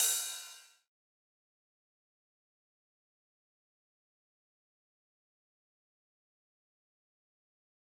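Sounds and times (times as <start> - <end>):
TR-909 drum machine ride cymbal: 0.0 - 0.7.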